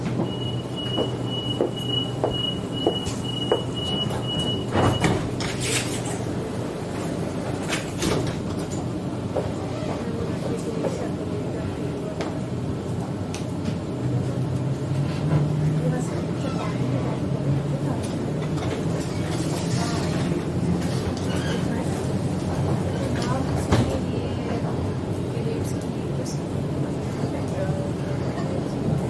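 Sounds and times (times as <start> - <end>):
moving commuter train interior rumbling and clattering in Sydney Australia: 0.0 - 29.0
voices murmuring: 8.5 - 29.0.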